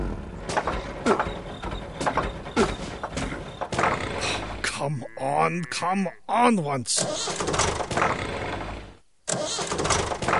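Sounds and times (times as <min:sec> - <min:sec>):
tractor engine cranking as someone tries to start it: 0:00.2 - 0:04.7, 0:06.9 - 0:10.3
speech: 0:04.9 - 0:08.3.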